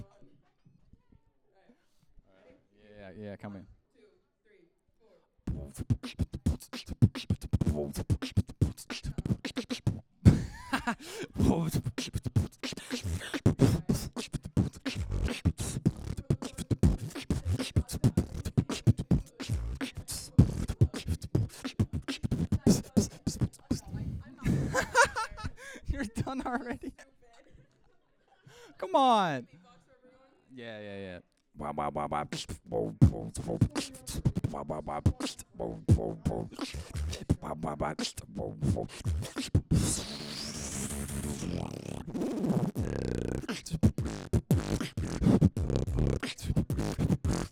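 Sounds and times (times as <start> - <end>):
beatboxing: 5.5 - 25.3, 31.6 - 47.5
laughter: 10.3 - 11.6, 24.4 - 28.9.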